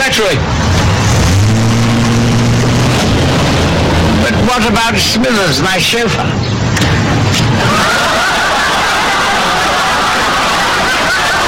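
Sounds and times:
speech: 0.2 - 0.5, 4.3 - 8.2
car engine running: 0.3 - 8.0
laughter: 7.5 - 11.4.

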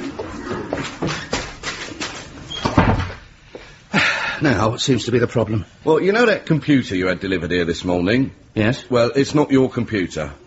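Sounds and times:
door opening or closing: 2.5 - 3.2
speech: 4.4 - 10.4.

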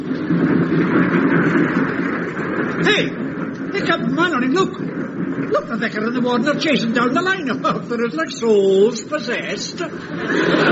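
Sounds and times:
train being driven along the line: 0.0 - 10.7
speech: 2.8 - 10.7
laughter: 10.0 - 10.7.

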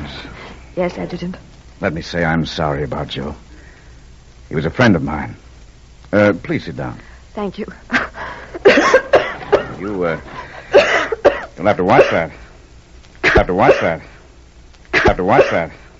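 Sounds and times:
speech: 0.8 - 3.5, 4.5 - 5.4, 6.1 - 8.1, 9.8 - 10.4, 11.6 - 12.4, 13.4 - 14.1, 15.1 - 15.8
woman coughing in short raspy bursts: 7.9 - 9.8, 10.7 - 12.3, 13.2 - 14.0, 15.0 - 15.7.

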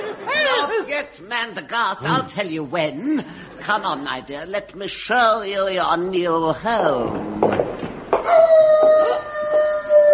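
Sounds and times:
speech: 1.0 - 7.5, 8.3 - 9.3
wolf-like howl from a werewolf: 8.3 - 10.1.

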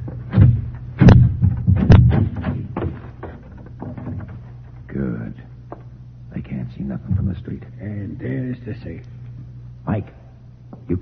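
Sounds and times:
snap lock door being opened with clicks and rattling knocks: 0.0 - 4.9
low rumble: 0.0 - 11.0
speech: 7.0 - 9.2, 9.8 - 10.2, 10.9 - 11.0.

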